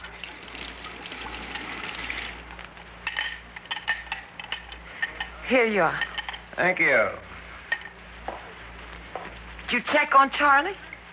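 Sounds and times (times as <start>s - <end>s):
water pouring into a glass: 0.0s - 2.6s
glassware clinking: 3.0s - 5.4s
speech: 5.5s - 7.3s, 9.7s - 10.8s.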